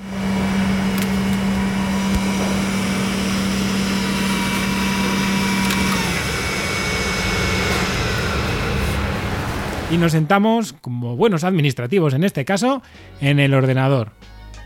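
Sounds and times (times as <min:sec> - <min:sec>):
laboratory unit motor switching off: 0:00.0 - 0:10.1
laboratory machines and cabinet fans droning: 0:00.0 - 0:10.5
speech: 0:09.9 - 0:14.3.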